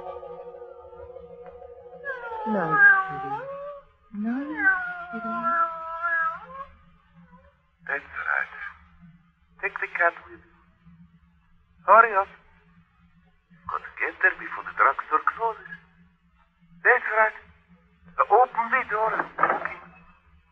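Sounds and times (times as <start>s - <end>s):
quiet hum: 0.0s - 20.5s
cat yowling and caterwauling: 2.0s - 6.8s.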